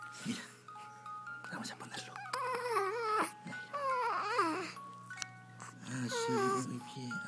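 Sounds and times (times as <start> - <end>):
speech: 0.2 - 0.5, 1.4 - 2.2
baby girl whimpering and cooing: 2.0 - 6.8.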